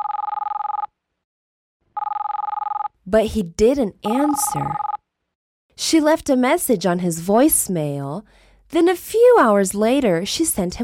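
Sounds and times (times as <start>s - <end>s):
cell phone ringing with a rapid electronic trill: 0.0s - 0.9s, 2.0s - 2.9s, 4.1s - 5.0s
speech: 3.1s - 4.9s, 5.8s - 10.8s.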